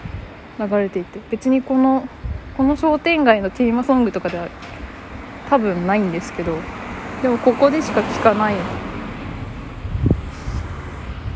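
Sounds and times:
breezy outdoor noise: 0.0 - 11.3
speech: 0.6 - 4.7, 5.5 - 8.8
car passing on the street: 3.7 - 11.3.

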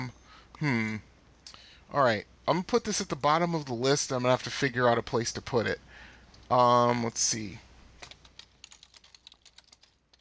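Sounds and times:
speech: 0.0 - 1.1, 1.9 - 7.6
typing on a computer keyboard: 7.9 - 10.1.

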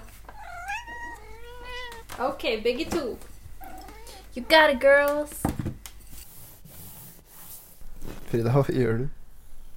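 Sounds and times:
two cats meowing: 0.2 - 2.2, 3.6 - 4.8
speech: 2.2 - 3.3, 4.4 - 5.4, 8.3 - 9.2
hand rubbing against a wall: 6.0 - 8.4.

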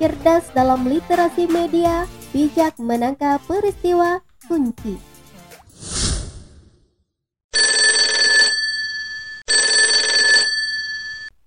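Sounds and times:
speech: 0.0 - 5.1
swoosh: 5.7 - 7.0
telephone bell ringing: 7.5 - 11.4.

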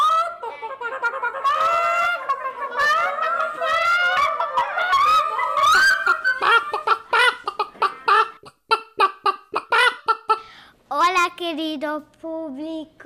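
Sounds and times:
laughter: 0.0 - 10.4
chickens clucking and squawking in a henhouse: 0.0 - 10.6
speech: 11.8 - 13.0.

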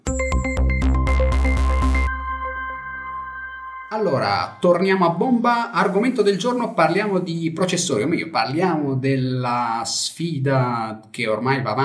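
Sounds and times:
upbeat electronic podcast intro theme jingle with deep bass and bright synth tones: 0.0 - 6.1
speech: 4.0 - 11.8.

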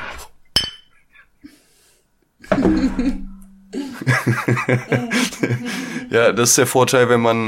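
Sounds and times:
beer bottle clinking against CRT monitor glass in a toast: 0.6 - 0.9
people chuckling and laughing: 2.5 - 6.2
speech: 2.6 - 3.3, 4.0 - 7.4.

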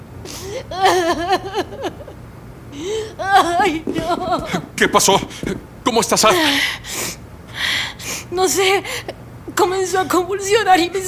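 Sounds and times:
woman sobbing after a nurse takes her away from her friend: 0.3 - 2.2, 2.8 - 4.7, 6.3 - 6.9, 7.9 - 9.2
speech: 0.6 - 7.2, 8.4 - 11.0
laughter: 0.7 - 2.2, 3.3 - 5.6.

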